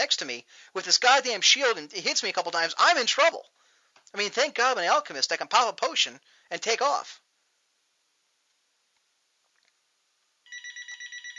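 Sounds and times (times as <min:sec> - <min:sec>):
speech: 0:00.1 - 0:07.2
electronic telephone ringing: 0:10.5 - 0:11.3.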